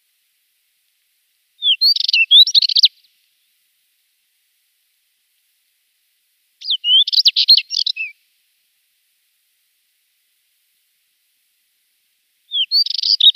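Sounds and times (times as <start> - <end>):
spectacled warbler twittering: 1.6 - 3.0, 6.6 - 8.2, 12.5 - 13.3.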